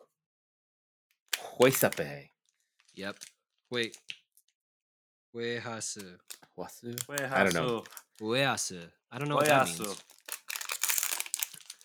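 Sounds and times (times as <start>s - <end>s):
pink-lined wrapping paper and plastic crinkling around a strawberry wafer cookie: 1.4s - 2.1s, 7.0s - 8.4s, 9.3s - 11.8s
speech: 1.6s - 2.3s, 3.0s - 4.2s, 5.3s - 10.2s.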